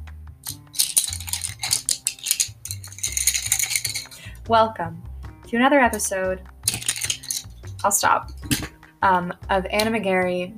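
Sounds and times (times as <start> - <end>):
bundle of colored pencils rustling and clattering together: 0.4 - 4.4, 6.6 - 8.7
speech: 4.5 - 6.5, 7.8 - 10.5.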